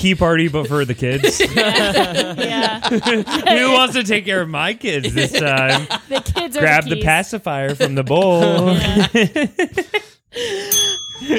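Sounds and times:
rhythmic laughter: 0.0 - 10.5
speech: 0.0 - 11.3
small handheld bell ringing with bright metallic tone: 10.6 - 11.3.

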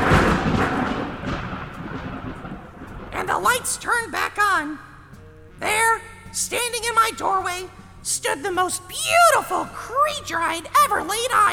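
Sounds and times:
thunder crash: 0.0 - 5.0
speech: 3.6 - 4.9, 5.6 - 11.5.

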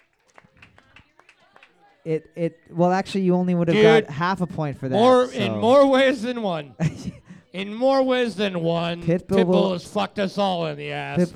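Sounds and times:
small group clapping for winning team: 0.0 - 2.4
speech: 2.0 - 11.3
laughter: 4.0 - 9.2.

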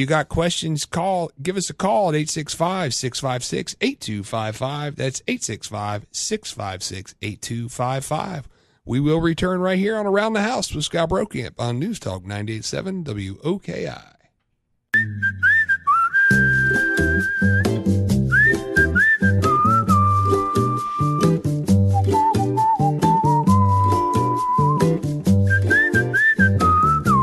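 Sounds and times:
speech: 0.0 - 14.2, 14.9 - 15.3
bright whistled melody: 15.0 - 27.2
full instrumental backing music: 15.0 - 27.2.

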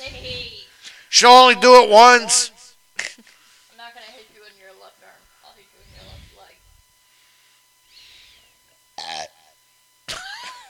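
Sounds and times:
speech: 1.2 - 2.5
person belching: 9.0 - 9.5.

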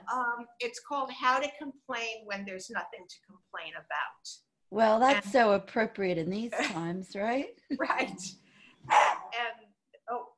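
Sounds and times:
speech: 0.1 - 9.5
excited dog barking indoors: 8.9 - 9.4.

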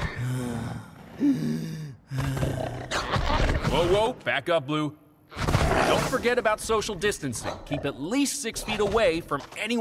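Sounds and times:
voice imitating labored breathing with raspy groaning gasps: 0.2 - 2.9
speech: 1.2 - 2.5, 3.8 - 5.0, 5.7 - 9.7.

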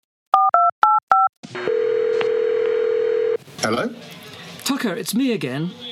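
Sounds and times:
hissy phone-line tone: 0.4 - 3.4
speech: 3.6 - 5.9.

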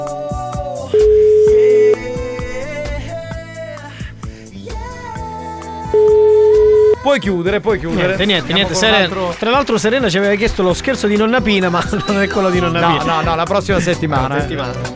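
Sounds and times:
busy music: 0.0 - 14.9
laughter: 0.0 - 14.9
telephone ringback tone during outgoing call: 1.0 - 2.0
speech: 7.1 - 14.9.

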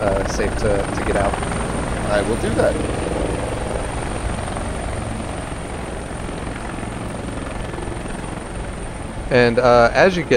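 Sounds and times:
speech: 0.0 - 3.1, 9.3 - 10.3
helicopter rotors beating in a steady low chop: 0.0 - 10.3.

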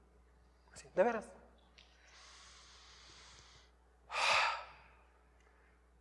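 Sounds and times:
speech: 0.8 - 1.4
deep breath in and out: 2.0 - 5.1.

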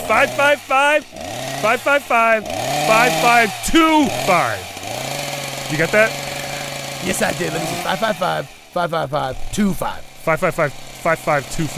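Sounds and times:
voice imitating a chainsaw cutting into a studio wall: 0.0 - 11.7
speech: 0.1 - 4.7, 5.7 - 6.2, 7.0 - 11.7.

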